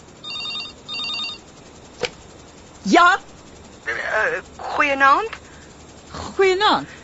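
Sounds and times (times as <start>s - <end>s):
telephone ringing with a bright trilling bell: 0.2s - 1.5s
speech: 2.8s - 3.3s, 3.9s - 5.4s, 6.4s - 7.0s.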